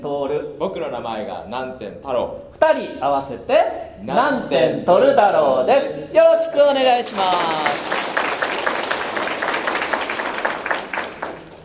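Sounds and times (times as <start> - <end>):
speech: 0.0 - 8.0
audience applause: 7.0 - 11.6.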